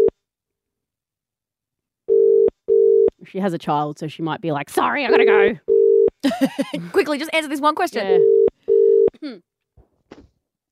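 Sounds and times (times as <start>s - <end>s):
outgoing phone call ringback tone: 2.1s - 3.1s, 5.1s - 6.1s, 8.1s - 9.1s
speech: 3.3s - 8.3s, 9.2s - 9.5s
laughter: 6.2s - 7.1s.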